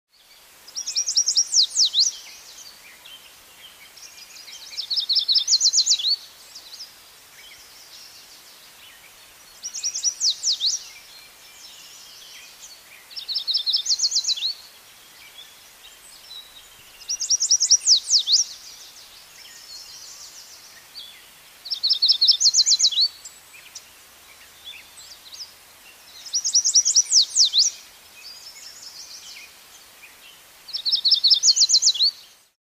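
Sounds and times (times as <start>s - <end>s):
Yellow Warbler song in the USA: 0.1s - 32.6s.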